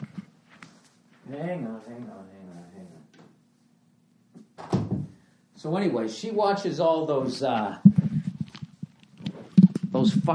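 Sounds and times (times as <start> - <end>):
speech: 1.3 - 3.0, 5.6 - 8.0, 10.0 - 10.3
door pulled shut with a thud and rattle: 4.4 - 5.2
voice talking: 9.9 - 10.3.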